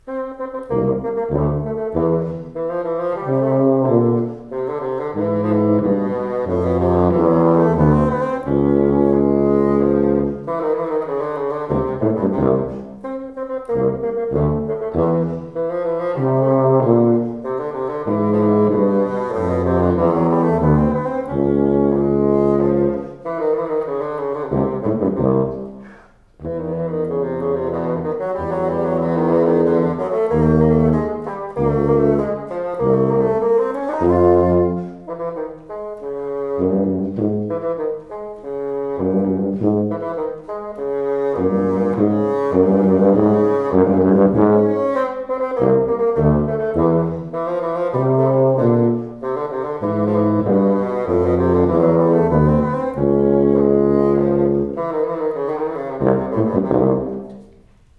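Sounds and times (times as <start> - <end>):
bassoon: 0.0 - 57.9
cello: 0.0 - 57.9.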